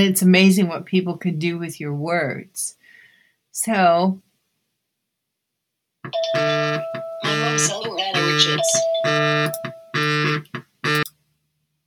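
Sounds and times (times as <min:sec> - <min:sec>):
speech: 0:00.0 - 0:02.8, 0:03.6 - 0:04.3, 0:06.1 - 0:09.8
mobile phone electronic melodic ringtone for an incoming call: 0:06.1 - 0:11.0.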